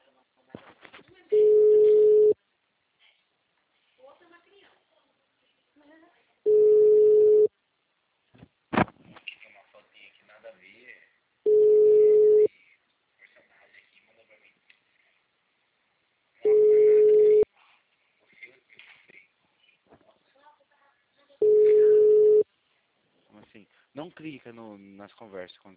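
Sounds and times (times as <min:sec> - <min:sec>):
ringback tone of an outgoing phone call: 0:01.4 - 0:02.4, 0:06.5 - 0:07.5, 0:11.5 - 0:12.5, 0:16.4 - 0:17.4, 0:21.4 - 0:22.4
speech: 0:24.0 - 0:25.7.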